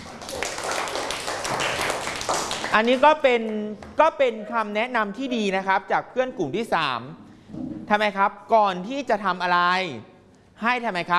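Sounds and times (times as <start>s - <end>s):
group applause in a classroom: 0.0s - 3.2s
speech: 2.8s - 11.1s.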